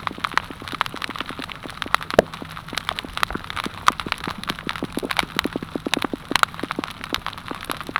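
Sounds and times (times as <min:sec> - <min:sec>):
rapid popping: 0:00.0 - 0:07.9.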